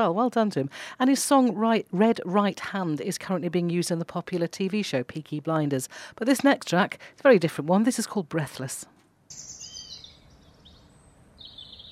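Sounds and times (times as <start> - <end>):
speech: 0.0 - 9.5
birdsong at the start of a song: 9.3 - 11.8.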